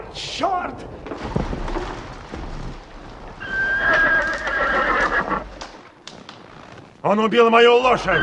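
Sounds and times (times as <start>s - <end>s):
speech: 0.2s - 1.4s, 7.1s - 8.2s
hooves clattering on the ground as riders gallop: 0.6s - 7.0s
horse giving loud drawn-out whinny: 3.4s - 5.6s.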